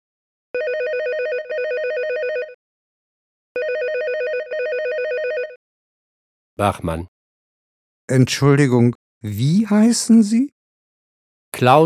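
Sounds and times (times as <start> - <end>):
telephone ringing with warbling electronic trill: 0.6 - 2.6, 3.6 - 5.6
speech: 6.6 - 7.1, 8.1 - 10.6, 11.5 - 11.8.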